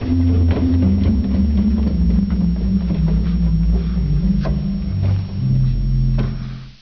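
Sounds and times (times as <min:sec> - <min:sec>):
organ Subbass 16 stop: 0:00.0 - 0:06.8.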